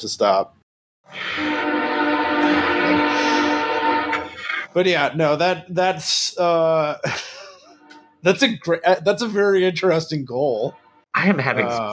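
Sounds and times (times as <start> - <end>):
speech: 0.0 - 0.6, 4.7 - 7.3, 8.2 - 11.9
loud train horn blaring: 1.1 - 4.8
laughter: 6.7 - 7.8.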